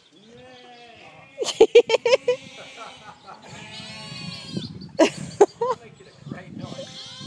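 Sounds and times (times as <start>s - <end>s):
sheep bleating: 0.4s - 4.7s, 6.6s - 7.2s
laughter: 1.4s - 3.7s, 5.0s - 6.6s.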